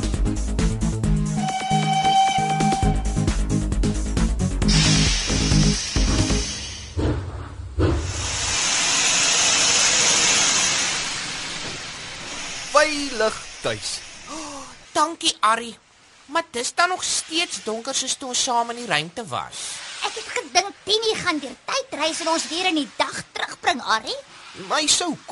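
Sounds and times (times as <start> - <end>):
music: 0.0 - 6.6
steam hissing from arriving train: 4.6 - 15.2, 16.0 - 25.3
speech: 13.3 - 14.1, 15.0 - 25.3.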